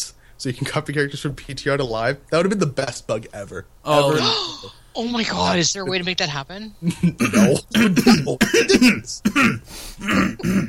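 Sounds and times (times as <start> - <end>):
speech: 0.0 - 10.6
person coughing: 7.0 - 10.6.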